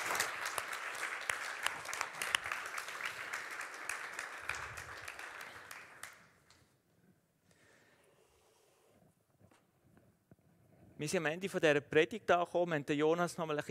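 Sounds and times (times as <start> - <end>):
audience applauding during a sermon: 0.0 - 6.3
speech: 11.0 - 13.6.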